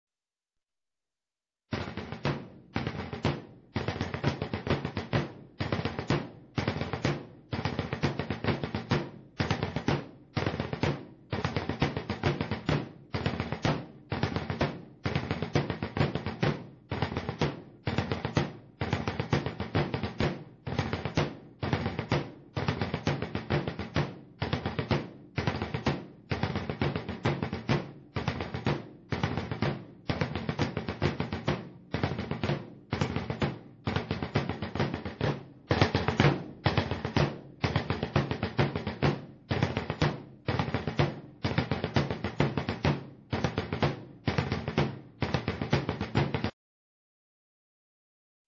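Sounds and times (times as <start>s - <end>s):
drums: 1.7s - 46.6s.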